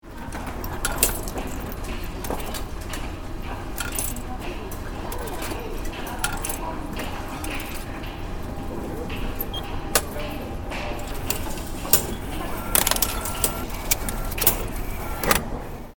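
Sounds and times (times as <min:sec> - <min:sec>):
metro ticket machine: 0:00.0 - 0:15.9.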